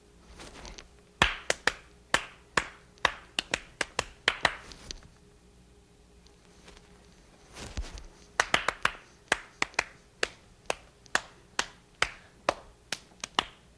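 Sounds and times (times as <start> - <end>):
hands clapping: 1.2 - 4.8, 8.3 - 13.7.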